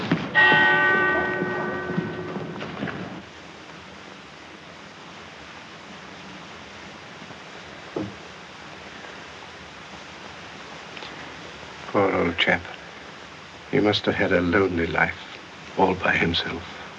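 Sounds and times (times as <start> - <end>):
steady hiss: 0.0 - 16.9
loud bell striking: 0.4 - 2.6
faint thump: 8.0 - 8.2
speech: 12.2 - 12.8, 13.7 - 16.8.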